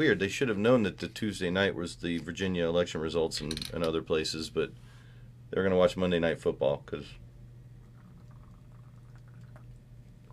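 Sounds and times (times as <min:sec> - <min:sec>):
speech: 0:00.0 - 0:04.9, 0:05.5 - 0:07.2
steady low hum: 0:00.0 - 0:10.3
coconut water or tea pouring with faint bubbling and small splashes: 0:07.8 - 0:10.3.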